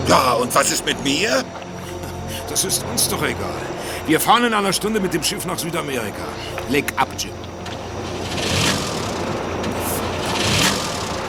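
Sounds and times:
speech: 0.1 - 1.6, 2.5 - 7.5
steady mechanical noise: 7.4 - 11.2
engine without spark plug cranking and failing to start: 7.5 - 11.2.

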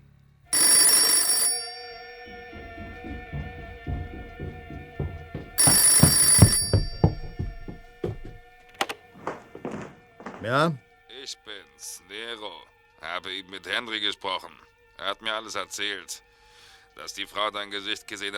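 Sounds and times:
telephone bell ringing: 0.6 - 3.4, 5.6 - 7.9
scattered knocks and thumps: 1.8 - 10.8
speech: 10.4 - 16.3, 17.0 - 18.3.

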